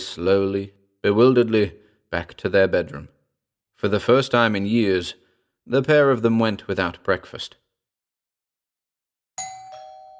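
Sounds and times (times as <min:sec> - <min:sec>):
speech: 0:00.2 - 0:03.2, 0:03.8 - 0:07.6
doorbell ding-dong chime: 0:09.4 - 0:10.1.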